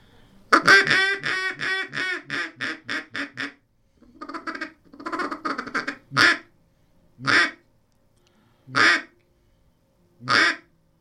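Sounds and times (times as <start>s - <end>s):
duck call blown as a quiet closed-in timber call: 0.5s - 6.5s, 7.2s - 7.6s, 8.7s - 9.1s, 10.2s - 10.7s.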